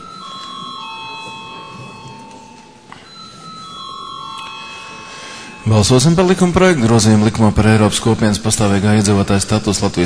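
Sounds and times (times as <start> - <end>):
parliamentary voting bell ringing before a vote: 0.0 - 7.6
speech: 5.7 - 10.0.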